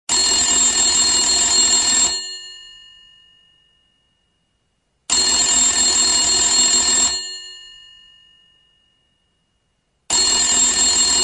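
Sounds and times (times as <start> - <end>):
rotary phone ringtones: 0.1 - 4.2, 5.1 - 9.2, 10.1 - 11.2.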